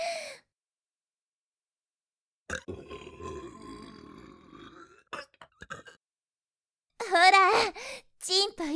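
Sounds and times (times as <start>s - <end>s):
speech: 2.5s - 3.0s, 7.1s - 8.7s
long loud drawn-out burp: 2.5s - 6.0s.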